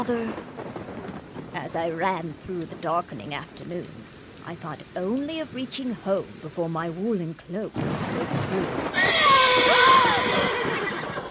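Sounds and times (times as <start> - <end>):
speech: 0.0 - 0.8, 1.6 - 10.8
great black carriage horse neighing: 9.0 - 11.2.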